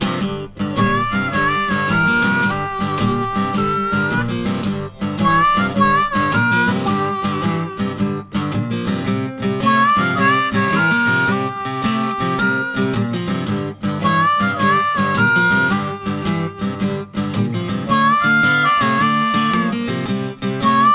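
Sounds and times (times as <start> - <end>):
blues harmonica bending notes in G: 0.0 - 20.9.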